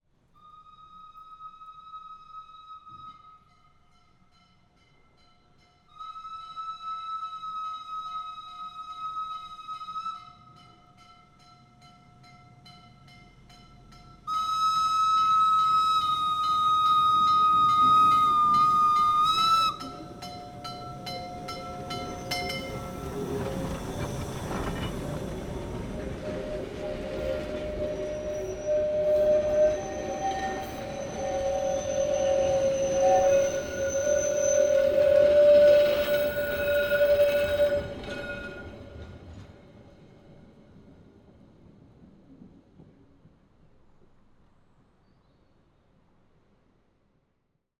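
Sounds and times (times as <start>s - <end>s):
steam train whistle: 0.4s - 3.5s, 5.9s - 10.5s, 14.3s - 23.8s, 26.0s - 38.7s
steam train passing by slowly, close: 0.7s - 47.1s
steam train wheels rolling: 13.4s - 44.9s
howling: 14.4s - 39.1s.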